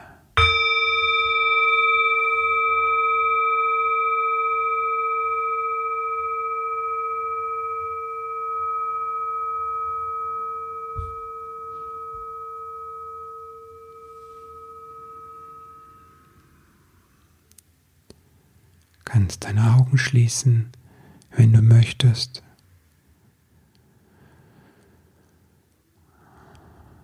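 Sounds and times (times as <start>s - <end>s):
singing bowl ringing: 0.4s - 17.1s
speech: 19.3s - 20.8s, 21.4s - 22.5s.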